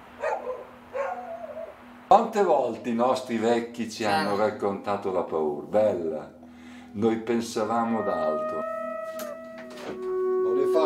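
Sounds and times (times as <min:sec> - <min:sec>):
steady low hum: 0:00.0 - 0:10.8
dogs barking and whining: 0:00.1 - 0:01.8
speech: 0:02.1 - 0:09.2.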